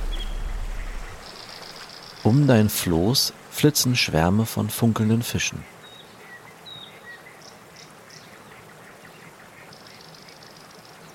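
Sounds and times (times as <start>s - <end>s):
ducks quacking: 0.0s - 1.2s
bird chirps: 0.0s - 2.2s
speech: 2.3s - 5.8s.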